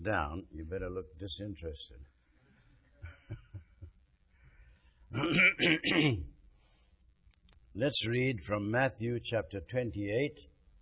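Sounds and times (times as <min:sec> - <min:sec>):
speech: 0:00.0 - 0:02.1, 0:05.1 - 0:06.3, 0:07.8 - 0:10.8
harsh coughs caused by pollen: 0:05.2 - 0:06.3
person clearing throat: 0:05.2 - 0:06.3.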